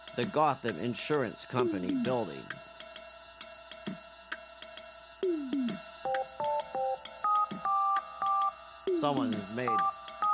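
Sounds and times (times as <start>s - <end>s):
speech: 0.2s - 2.7s, 9.0s - 10.0s
electronic tones of a telephone number being dialed: 6.1s - 8.5s, 9.7s - 10.3s.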